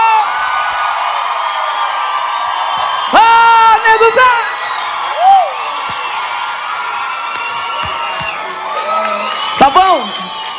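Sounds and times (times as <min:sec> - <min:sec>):
crowd applauding: 0:00.0 - 0:10.5.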